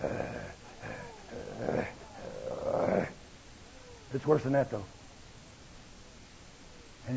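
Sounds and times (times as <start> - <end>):
low guttural animal growl: 0.0 - 3.2
speech: 4.1 - 5.0.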